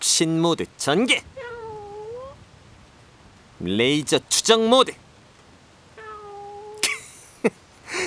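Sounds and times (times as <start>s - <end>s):
speech: 0.2s - 1.5s, 3.6s - 5.0s
cat meowing: 1.0s - 2.5s, 6.0s - 7.3s.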